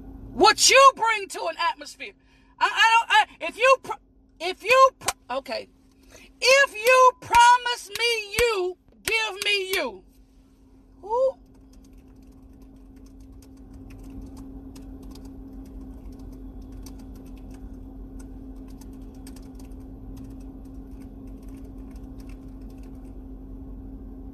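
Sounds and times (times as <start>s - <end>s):
steady low electrical hum: 0.0s - 24.3s
speech: 0.4s - 5.8s, 6.4s - 10.1s, 11.0s - 11.4s
keyboard typing: 11.4s - 23.1s.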